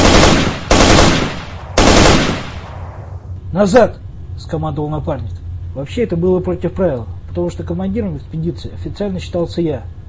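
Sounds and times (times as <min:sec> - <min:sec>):
submachine gun firing short bursts: 0:00.0 - 0:02.6
speech: 0:03.6 - 0:10.0.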